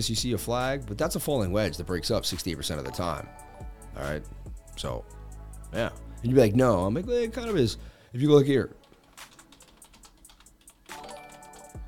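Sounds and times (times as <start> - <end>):
speech: 0.0 - 8.8
typing on a computer keyboard: 8.8 - 11.8.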